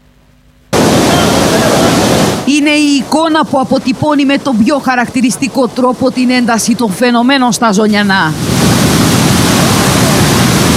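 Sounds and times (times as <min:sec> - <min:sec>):
flooded mountain river rushing with huge amounts of water during a severe storm: 0:00.8 - 0:10.7
speech: 0:03.0 - 0:09.0.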